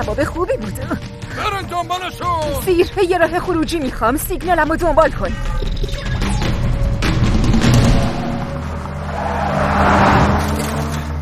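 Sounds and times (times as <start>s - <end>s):
speech: 0.1s - 5.7s
car engine roaring while driven fast and erratically: 6.6s - 11.2s.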